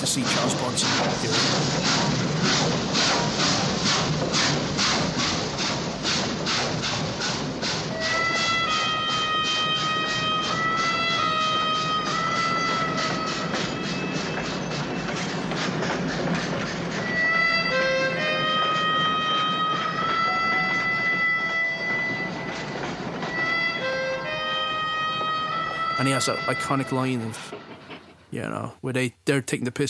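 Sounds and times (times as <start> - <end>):
train wheels clattering in a fast steady rhythm: 0.0 - 28.7
speech: 0.1 - 5.4, 26.2 - 27.7, 28.3 - 29.8
high metallic squeals of passing train: 7.9 - 28.2.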